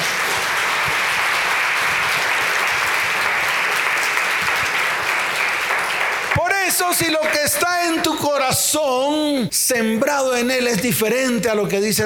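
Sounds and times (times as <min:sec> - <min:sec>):
congregation applauding loudly: 0:00.0 - 0:08.4
speech: 0:06.9 - 0:12.0.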